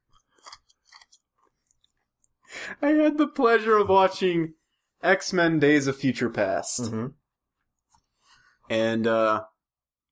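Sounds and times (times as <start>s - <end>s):
crunching of ice being chewed: 0.0s - 2.4s
speech: 2.8s - 7.2s, 8.7s - 9.5s.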